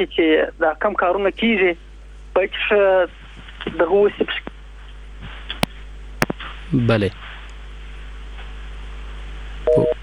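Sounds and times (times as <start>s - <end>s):
speech: 0.0s - 4.5s, 6.7s - 7.2s
low phone line hum: 0.0s - 10.0s
two-toned electronic phone disconnection beep: 9.7s - 10.0s.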